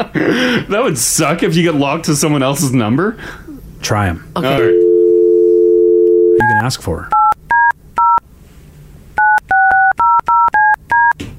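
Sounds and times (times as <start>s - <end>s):
speech: 0.0s - 4.8s, 6.6s - 7.2s
faint low hum: 1.7s - 7.3s
touch-tone telephone keypad beeps as a phone number is dialed: 9.2s - 11.2s.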